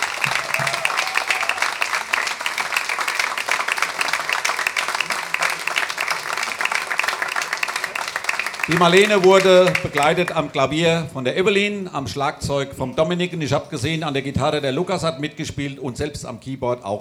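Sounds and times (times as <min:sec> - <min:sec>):
audience applause: 0:00.0 - 0:10.5
speech: 0:08.7 - 0:16.9.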